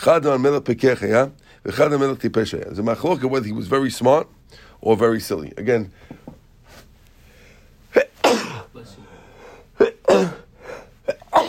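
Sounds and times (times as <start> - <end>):
speech: 0.0 - 6.3
person sneezing: 7.9 - 11.4.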